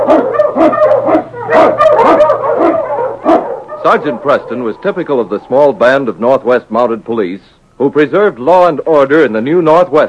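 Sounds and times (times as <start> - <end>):
pack of husky sled dogs barking and yelping: 0.0 - 5.8
speech: 3.9 - 10.0.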